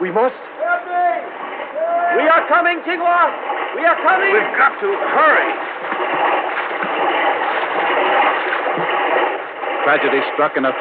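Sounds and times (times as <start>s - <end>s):
turbulent flood water rushing: 0.0s - 10.7s
speech: 0.1s - 0.5s, 2.5s - 6.2s, 9.8s - 10.7s.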